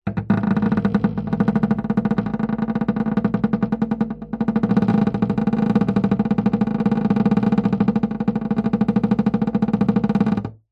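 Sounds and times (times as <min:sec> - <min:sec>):
hollow wood object vibrating fast: 0:00.0 - 0:10.6.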